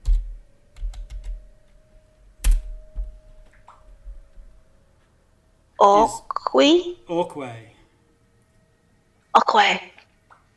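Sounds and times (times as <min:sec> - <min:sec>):
typing on a computer keyboard: 0:00.0 - 0:01.4
faint steady hum: 0:00.0 - 0:10.5
speech: 0:05.8 - 0:07.7, 0:09.4 - 0:09.9.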